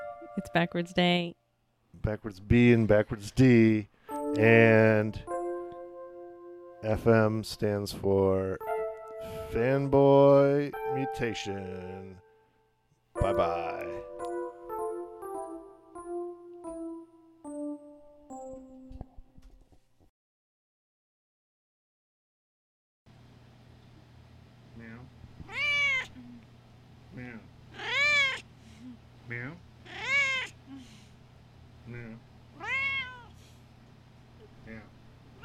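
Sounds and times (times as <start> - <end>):
steady low hum: 0.0 - 15.9, 23.1 - 35.4
speech: 0.4 - 1.4, 2.0 - 5.3, 6.8 - 12.2, 13.2 - 14.1
cat meowing: 25.4 - 26.3, 27.7 - 28.5, 29.9 - 30.6, 32.6 - 33.4.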